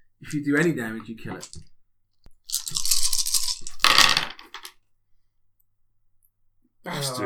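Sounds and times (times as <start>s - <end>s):
speech: 0.2s - 1.7s, 7.0s - 7.2s
handful of dice rolled in a game: 1.4s - 1.7s, 2.3s - 4.8s.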